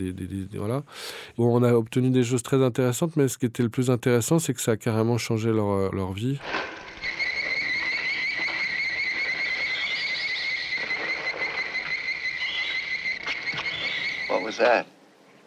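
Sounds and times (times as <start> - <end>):
speech: 0.0 - 6.8, 14.6 - 15.0
shrill electronic giant-ant screech effect: 6.7 - 14.6.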